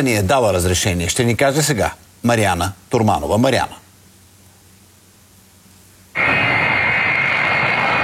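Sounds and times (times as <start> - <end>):
speech: 0.0 - 3.8
Il-76 transport aircraft jet engines roaring overhead at night: 6.2 - 8.0.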